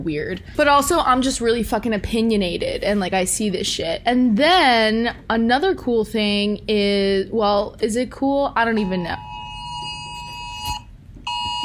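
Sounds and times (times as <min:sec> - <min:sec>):
speech: 0:00.0 - 0:09.3
tornado watch alert alarm: 0:08.7 - 0:11.6.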